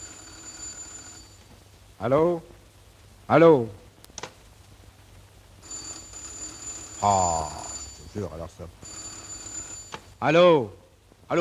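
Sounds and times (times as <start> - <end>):
quiet warbling electronic telephone ring: 0.0 - 1.5, 5.6 - 10.2
speech: 2.0 - 2.6, 3.3 - 3.8, 7.0 - 7.6, 8.2 - 9.0, 10.2 - 11.3
soft clicks: 4.0 - 4.4.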